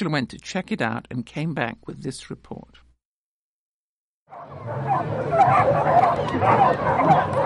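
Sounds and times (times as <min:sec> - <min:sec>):
speech: 0:00.0 - 0:02.8, 0:04.3 - 0:07.4
crowd noise: 0:04.3 - 0:07.4
excited dogs barking and yipping at a dock-jumping event: 0:04.3 - 0:07.4.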